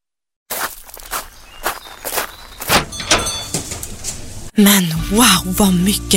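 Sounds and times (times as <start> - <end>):
footsteps of customers walking into a fabric shop: 0.5 - 4.5
shop door sound: 2.6 - 4.4
speech: 4.6 - 6.1.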